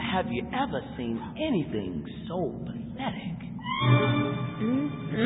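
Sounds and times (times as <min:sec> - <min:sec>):
speech: 0:00.2 - 0:05.2
whale calls underwater: 0:03.6 - 0:05.2.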